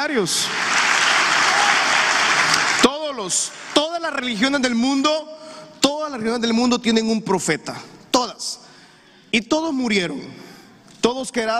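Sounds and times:
speech: 0.0s - 0.8s, 3.2s - 5.3s, 6.1s - 7.9s, 9.3s - 11.5s
large audience applauding: 0.3s - 4.4s.

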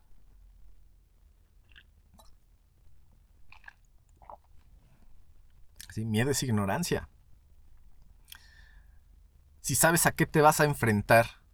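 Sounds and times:
person sipping coffee with wet slurps: 1.6s - 2.4s, 3.5s - 4.8s
person swallowing coffee: 1.7s - 2.4s, 3.5s - 4.7s
speech: 6.0s - 7.1s, 9.7s - 11.4s.

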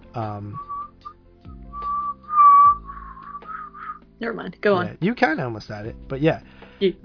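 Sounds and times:
speech: 0.2s - 0.7s, 4.2s - 7.0s
person whistling a movie theme melody: 0.2s - 4.0s.

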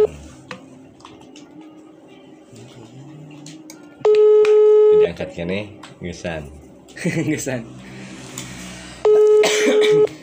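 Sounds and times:
phone ringback tone: 4.0s - 5.2s, 9.0s - 10.1s
speech: 5.2s - 7.9s
laughter: 7.0s - 7.6s.

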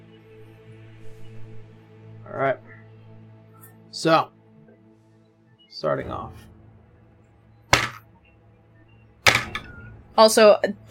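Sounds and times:
speech: 2.3s - 2.7s, 4.0s - 4.4s, 5.8s - 6.5s, 10.2s - 10.8s
dice being picked up and handled clattering: 7.8s - 8.0s, 9.3s - 9.6s.

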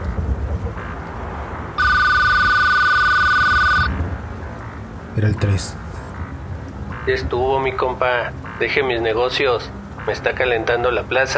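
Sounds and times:
low rumble: 0.0s - 11.3s
telephone ringing with electronic trill: 1.8s - 3.9s
speech: 5.2s - 5.8s, 7.1s - 11.3s.

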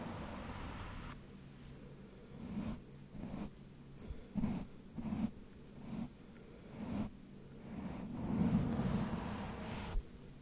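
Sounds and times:
low steady rumble: 0.0s - 10.4s
scratchy scrubbing brushing strokes: 2.2s - 10.0s.

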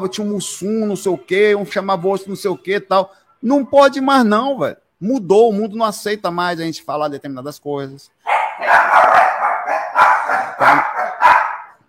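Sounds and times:
speech: 0.0s - 8.2s
several dogs barking loudly in overlapping sharp barks: 8.2s - 11.8s.

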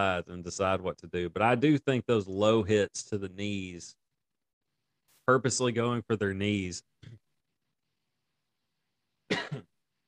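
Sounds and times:
speech: 0.0s - 4.0s, 5.3s - 7.2s
cough: 9.3s - 9.8s.

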